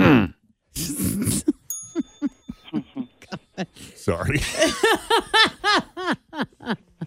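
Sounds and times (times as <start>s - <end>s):
gravelly throat clearing: 0.0s - 1.5s
short choppy vocal bursts: 0.0s - 1.6s
laughter: 1.3s - 7.0s
bright bell ding: 1.7s - 3.2s
speech: 4.0s - 6.2s.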